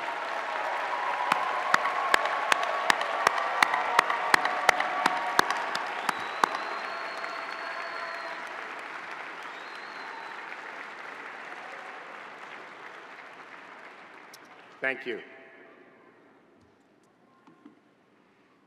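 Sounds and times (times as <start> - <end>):
audience applauding at a doctoral graduation ceremony: 0.0 - 15.2
speech: 14.9 - 15.3.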